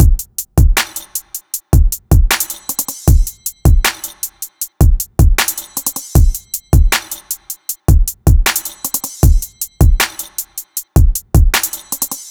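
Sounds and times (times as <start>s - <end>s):
full drum loop: 0.0s - 12.2s.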